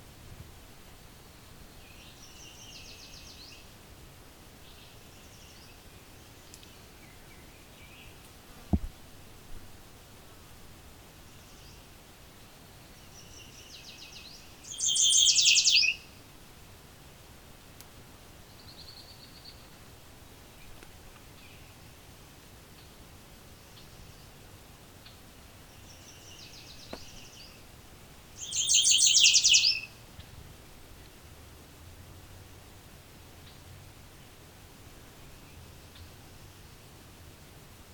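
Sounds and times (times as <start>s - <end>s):
steady hiss: 0.0s - 37.9s
songbird singing: 1.2s - 3.8s, 4.6s - 8.9s, 11.2s - 16.3s, 18.3s - 19.8s, 20.5s - 22.0s, 22.6s - 30.4s, 35.0s - 36.9s.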